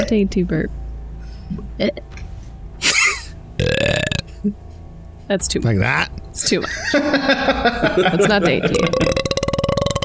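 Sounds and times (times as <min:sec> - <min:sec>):
speech: 0:00.0 - 0:00.8, 0:01.5 - 0:02.2, 0:04.4 - 0:04.6, 0:05.3 - 0:09.1
small gurgling burp sound effect: 0:03.6 - 0:04.3, 0:08.7 - 0:10.0
laughter: 0:06.6 - 0:09.2.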